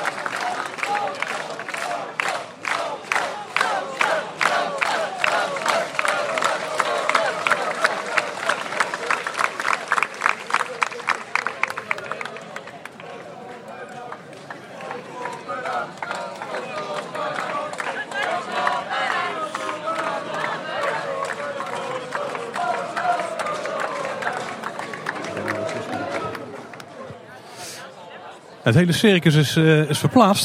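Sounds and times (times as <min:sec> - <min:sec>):
large crowd clapping in a fast rhythm: 0:00.0 - 0:27.3
scattered crowd cheers: 0:00.0 - 0:30.4
speech: 0:28.7 - 0:30.4.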